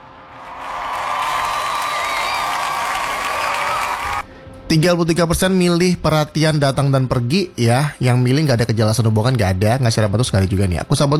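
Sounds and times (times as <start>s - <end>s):
crowd applause: 0.0s - 4.2s
faint cheers: 0.0s - 4.2s
speech: 4.7s - 11.1s.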